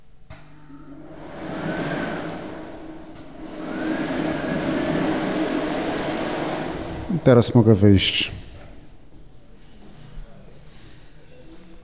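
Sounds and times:
hair dryer running in a bathroom: 0.4 - 9.0
speech: 7.2 - 8.4.

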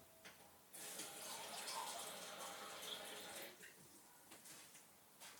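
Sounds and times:
water poured from a standard mug into a cup: 0.8 - 3.6.

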